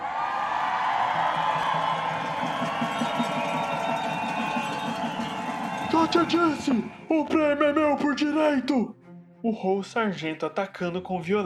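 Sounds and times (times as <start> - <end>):
whoops rising above the din: 0.0 - 7.0
large crowd roaring and cheering: 0.0 - 7.3
speech: 6.1 - 11.4.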